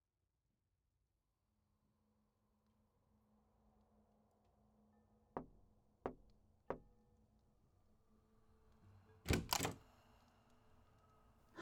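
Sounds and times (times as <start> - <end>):
knocking on a door: 5.4 - 6.9.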